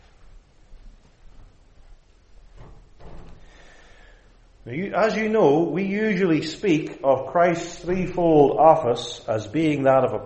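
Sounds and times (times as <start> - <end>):
steady low room hum: 0.0 - 10.2
soft clunks: 2.5 - 3.7
door being opened: 2.5 - 3.8
speech: 4.7 - 10.2.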